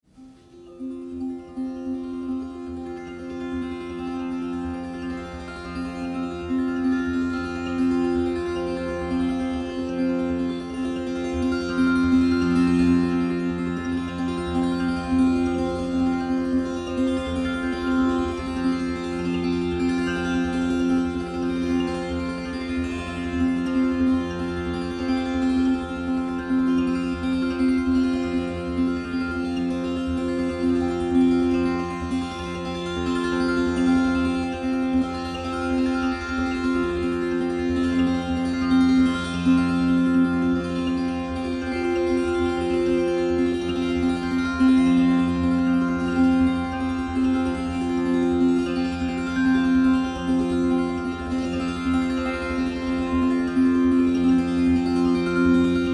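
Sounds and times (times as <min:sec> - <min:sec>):
tambura tuned to C and F: 0:00.0 - 0:55.9.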